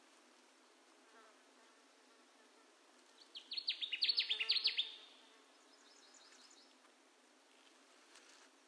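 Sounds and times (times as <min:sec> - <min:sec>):
Connecticut warbler song: 0:03.2 - 0:06.8.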